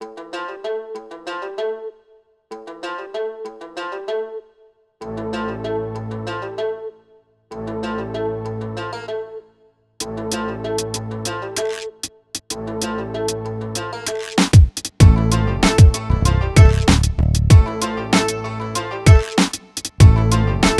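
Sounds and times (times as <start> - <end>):
hip hop music in A minor at 96 BPM: 10.0 - 20.7.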